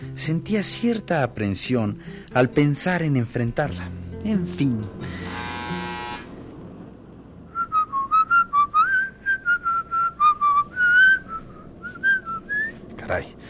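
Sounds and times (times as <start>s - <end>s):
speech: 0.2s - 5.2s, 13.1s - 13.3s
short electric buzz: 5.0s - 6.4s
person whistling a lively tune: 7.5s - 12.8s.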